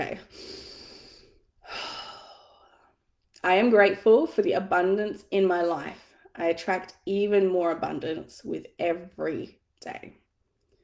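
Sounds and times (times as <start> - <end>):
slow deep breath before a guided affirmation meditation: 0.2 - 3.0
speech: 3.4 - 10.2.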